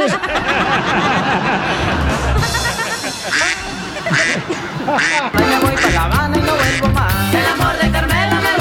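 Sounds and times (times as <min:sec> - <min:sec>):
laughter: 0:00.0 - 0:08.5
ducks quacking: 0:03.2 - 0:07.3.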